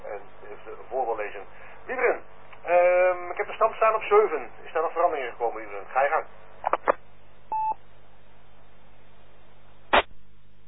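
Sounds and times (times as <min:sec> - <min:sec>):
faint low hum: 0:00.0 - 0:10.6
speech: 0:01.2 - 0:02.3, 0:03.9 - 0:06.5
telephone keypad beep: 0:07.5 - 0:07.8.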